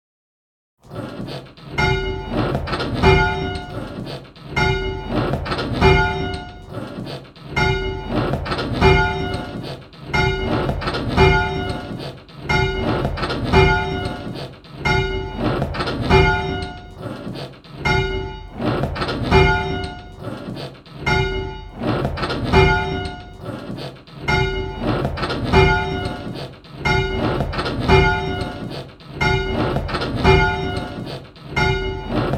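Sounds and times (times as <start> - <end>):
bells sounding a 6th: 1.8 - 3.9, 4.6 - 6.7, 7.6 - 9.6, 10.2 - 17.0, 17.8 - 18.6, 19.3 - 20.2, 21.1 - 21.8, 22.5 - 23.4, 24.3 - 32.3.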